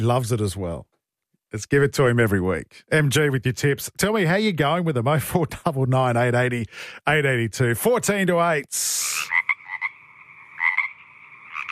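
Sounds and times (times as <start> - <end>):
speech: 0.0 - 0.9, 1.5 - 9.4
frog croaking: 9.0 - 11.7.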